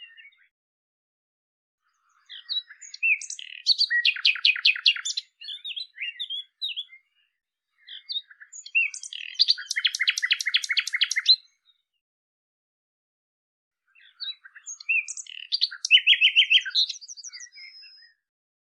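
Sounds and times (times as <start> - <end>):
common nightingale song: 0.0 - 0.5, 1.8 - 12.0, 13.8 - 18.3.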